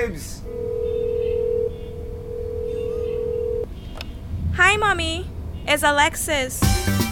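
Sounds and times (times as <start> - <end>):
speech: 0.0 - 0.8, 4.7 - 7.0
telephone dialing tone: 0.5 - 3.6
low rumble: 1.9 - 6.6.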